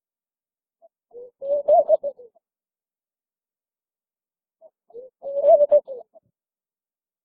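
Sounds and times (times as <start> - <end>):
laughing dove bubbling coo phrases: 1.1 - 2.4, 4.9 - 6.2.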